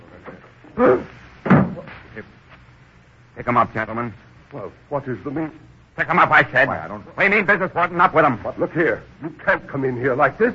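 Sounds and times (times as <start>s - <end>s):
speech: 0.2s - 1.1s, 3.4s - 10.5s
wooden door being opened: 1.4s - 1.9s.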